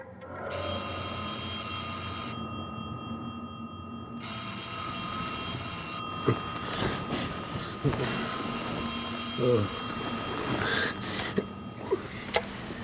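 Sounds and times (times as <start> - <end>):
old-fashioned telephone bell ringing: 0.4 - 11.7
faint rustling: 6.3 - 12.8.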